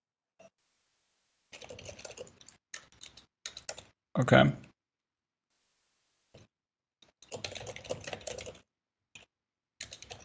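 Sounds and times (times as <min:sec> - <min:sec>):
typing on a computer keyboard: 0:01.6 - 0:03.9, 0:07.2 - 0:10.2
speech: 0:04.2 - 0:04.6.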